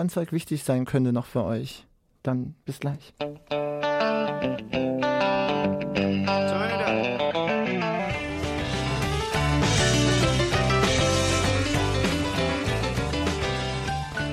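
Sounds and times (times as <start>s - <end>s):
speech: 0.0s - 3.6s
distorted electric guitar: 3.2s - 14.3s
loud instrumental rock song: 3.4s - 14.3s
bass and drums: 8.0s - 14.3s.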